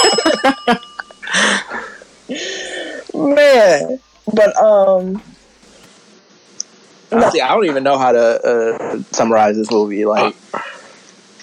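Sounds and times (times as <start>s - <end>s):
bright metallic bell dings: 0.0s - 3.0s
sustained ringing tone: 0.0s - 5.8s
speech: 0.5s - 0.9s, 3.2s - 5.3s, 7.1s - 10.7s.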